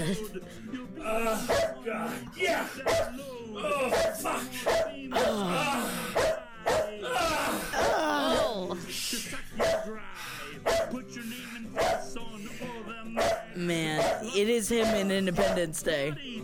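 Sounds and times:
speech: 0.0s - 5.8s, 14.4s - 16.4s
people laughing: 0.0s - 13.4s
dog barking in yippy whimpering bursts: 1.4s - 1.8s, 2.8s - 3.2s, 3.9s - 5.3s, 6.1s - 7.0s, 9.5s - 10.0s, 10.6s - 11.0s, 11.8s - 12.2s, 13.2s - 15.6s.

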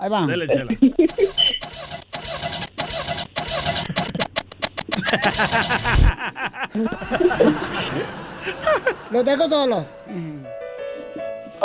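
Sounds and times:
speech: 0.0s - 1.3s, 5.1s - 10.2s
laughter: 0.4s - 1.5s, 4.9s - 9.8s
voice mimicking a broken-down car engine failing to start: 1.1s - 6.1s.

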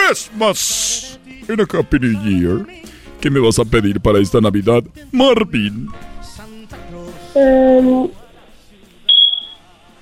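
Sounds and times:
speech: 0.2s - 6.1s, 7.3s - 8.2s
smoke alarm low-battery chirp: 9.1s - 9.6s.

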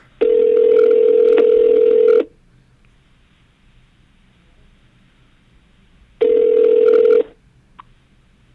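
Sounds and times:
phone ringback tone: 0.2s - 2.3s, 6.2s - 7.4s.

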